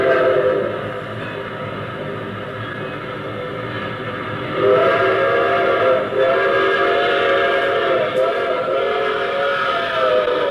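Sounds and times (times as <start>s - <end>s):
train whistle in long harmonic blasts: 0.0s - 0.9s, 4.5s - 10.4s
train rumbling: 0.0s - 10.4s.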